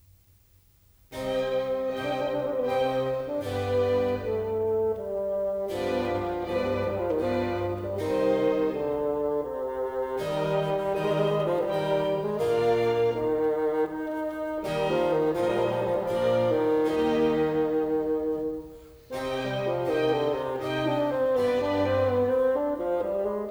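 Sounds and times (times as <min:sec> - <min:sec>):
bassoon concerto: 0:01.1 - 0:23.5.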